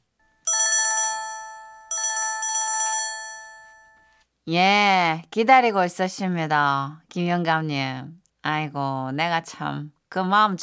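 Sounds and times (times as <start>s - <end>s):
telephone ringing with electronic tone pattern: 0.3s - 4.2s
speech: 4.5s - 10.6s.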